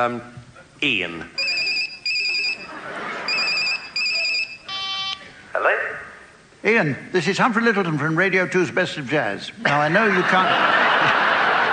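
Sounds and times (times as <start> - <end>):
speech: 0.0 - 1.4, 6.6 - 11.2
laughter: 1.4 - 4.6, 9.6 - 11.7
phone ringing in electronic trilling bursts: 1.4 - 5.2.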